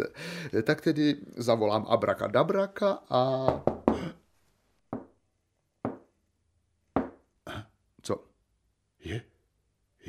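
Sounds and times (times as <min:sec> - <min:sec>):
speech: 0:00.0 - 0:04.2, 0:08.1 - 0:08.3, 0:09.0 - 0:09.3
knocking on a door: 0:03.5 - 0:04.1, 0:04.9 - 0:05.1, 0:05.8 - 0:06.1, 0:07.0 - 0:07.2.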